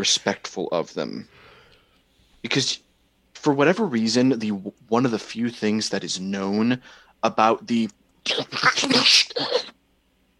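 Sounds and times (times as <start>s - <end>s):
speech: 0.0s - 1.4s, 2.4s - 2.8s, 3.4s - 9.8s
person sneezing: 8.3s - 9.8s.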